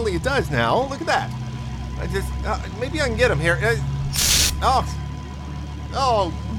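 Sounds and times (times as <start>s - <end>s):
speech: 0.2s - 1.4s, 2.0s - 5.0s, 5.9s - 6.5s
aerosol bug spray hissing: 4.1s - 4.6s.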